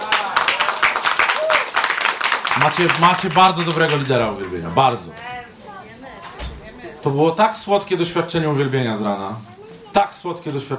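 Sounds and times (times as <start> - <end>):
audience applause at a church worship gathering: 0.0 - 4.6
speech: 2.6 - 5.3, 7.0 - 10.7.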